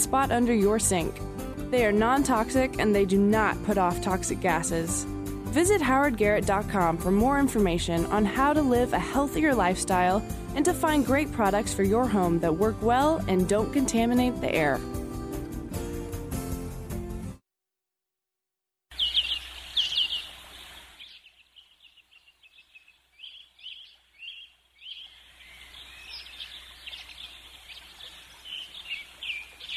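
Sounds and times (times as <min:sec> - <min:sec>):
speech: 0:00.0 - 0:14.9
music: 0:00.0 - 0:17.4
birds chirping and singing: 0:18.9 - 0:29.7.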